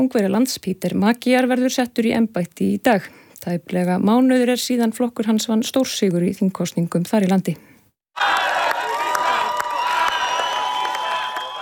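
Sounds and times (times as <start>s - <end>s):
speech: 0.0s - 8.4s
crowd cheering and shouting outside parliament: 8.2s - 11.6s.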